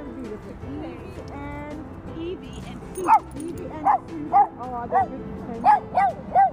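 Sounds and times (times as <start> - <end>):
people murmuring: 0.0 - 6.5
excited dog yipping and barking: 3.0 - 6.5.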